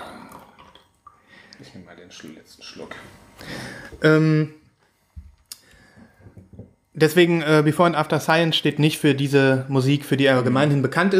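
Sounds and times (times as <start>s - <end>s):
coffee being poured into a cup as a refill in a kitchen: 0.0s - 3.0s
small drips of coffee: 0.1s - 2.5s
speech: 1.6s - 4.6s, 7.0s - 11.1s.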